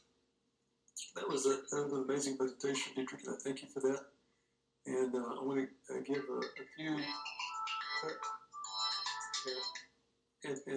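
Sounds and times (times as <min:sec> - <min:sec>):
speech: 0:01.0 - 0:04.2, 0:04.8 - 0:07.3, 0:08.0 - 0:08.4, 0:09.4 - 0:09.8, 0:10.4 - 0:10.7
phone ringtone playing a melodic electronic tune: 0:06.2 - 0:09.8.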